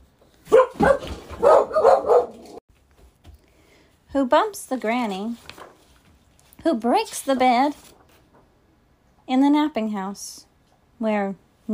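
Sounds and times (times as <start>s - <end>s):
dog yapping sharply: 0.5s - 2.6s
speech: 4.2s - 5.5s, 6.6s - 7.9s, 9.3s - 11.7s.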